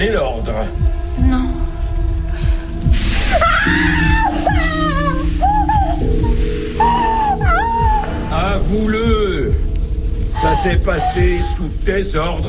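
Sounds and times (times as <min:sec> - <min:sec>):
speech: 0:00.0 - 0:01.5, 0:10.4 - 0:12.4
dense sustained musical drone: 0:00.0 - 0:12.4
woman screaming in pain under torture with a white-hot pincer: 0:03.2 - 0:08.4.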